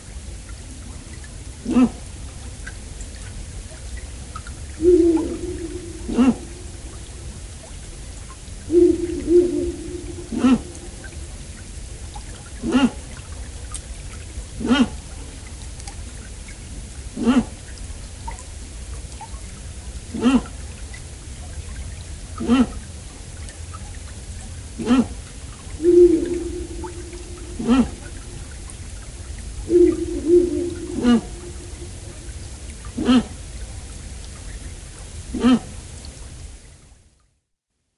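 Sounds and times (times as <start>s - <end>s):
steady hiss: 0.0s - 36.8s
female owl giving short harsh barking calls: 4.8s - 7.3s, 8.7s - 11.2s, 12.6s - 12.9s, 25.8s - 28.7s, 29.4s - 32.4s.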